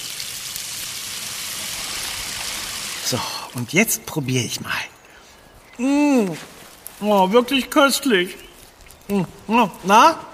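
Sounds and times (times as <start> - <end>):
running water rinsing berries: 0.0 - 3.7
speech: 3.1 - 4.9, 5.8 - 8.4, 9.1 - 10.3.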